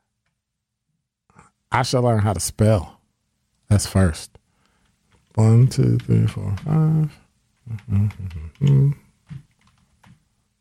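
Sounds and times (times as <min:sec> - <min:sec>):
speech: 0:01.8 - 0:03.0, 0:03.7 - 0:04.4, 0:05.4 - 0:09.4
typing on a computer keyboard: 0:05.9 - 0:06.9, 0:07.6 - 0:10.3.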